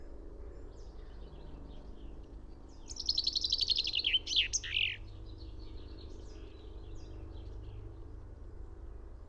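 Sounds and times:
Common chaffinch Fringilla coelebs song: 2.7s - 5.1s.

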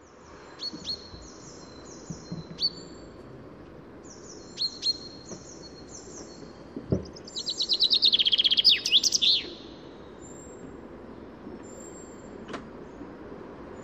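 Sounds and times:
low background hiss: 0.0s - 13.8s
common chaffinch Fringilla coelebs calls: 0.6s - 3.1s, 4.0s - 10.5s.

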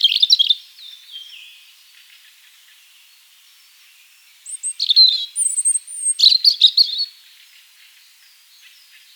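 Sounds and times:
European robin Erithacus rubecula singing: 0.0s - 1.6s, 3.6s - 7.2s.

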